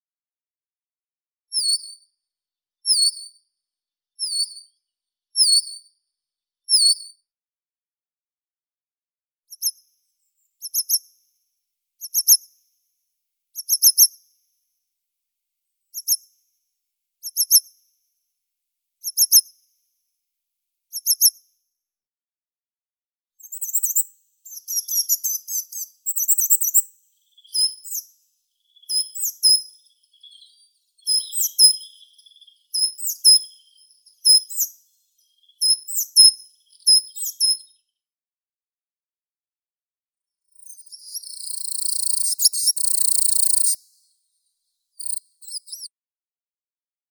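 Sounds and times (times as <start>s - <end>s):
coal tit Periparus ater calling: 23.5s - 37.7s, 40.6s - 43.8s, 45.0s - 45.9s.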